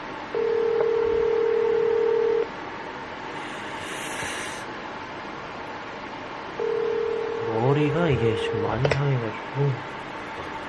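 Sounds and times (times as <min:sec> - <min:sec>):
phone ringback tone of an unanswered call: 0:00.4 - 0:02.5, 0:06.6 - 0:07.6
speech: 0:07.8 - 0:10.1.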